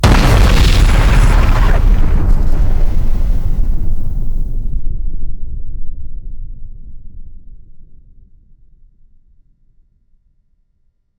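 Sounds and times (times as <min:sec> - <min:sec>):
nuclear explosion: 0:00.0 - 0:05.6.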